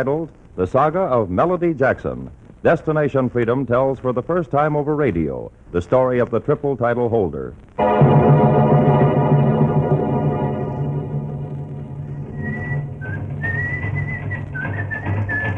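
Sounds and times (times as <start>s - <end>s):
speech: 0.0s - 8.4s
dense steady low rumble: 7.8s - 15.0s
man whistling a wavering tune: 12.3s - 15.5s.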